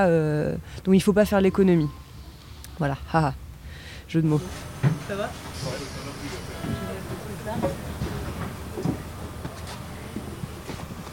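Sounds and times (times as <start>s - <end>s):
speech: 0.0s - 2.0s, 2.8s - 3.4s, 4.1s - 6.0s
RER C suburban train running on its rails at Javel: 4.4s - 11.1s
indistinct voices murmuring: 4.4s - 11.1s.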